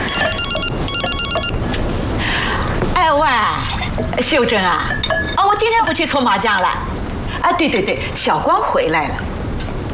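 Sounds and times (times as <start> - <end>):
electronic telephone ringing in a home: 0.0 - 1.6
low hiss: 0.0 - 9.9
speech: 4.3 - 9.3.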